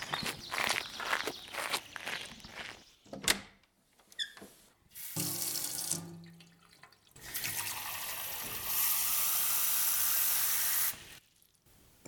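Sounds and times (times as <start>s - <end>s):
boy's footsteps walking: 0.0s - 2.9s
water running steadily from a tap: 5.0s - 11.2s.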